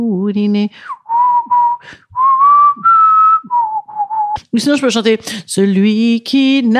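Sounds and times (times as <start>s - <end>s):
speech: 0.0s - 1.0s, 1.8s - 2.0s, 4.4s - 6.7s
person whistling a tune: 0.8s - 4.4s.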